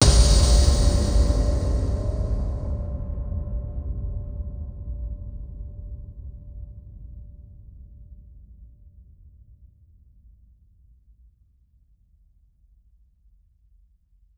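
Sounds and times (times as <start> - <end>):
mysterious cinematic impacts: 0.0 - 7.7.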